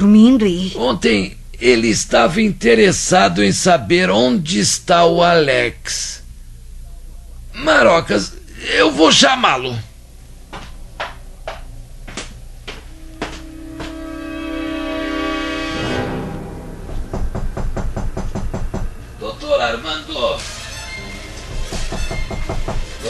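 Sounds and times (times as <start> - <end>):
speech: 0.0 - 6.2, 7.6 - 9.9
sustained musical tones: 12.5 - 23.0
knocking on a bedroom door: 16.9 - 19.0, 21.7 - 22.9.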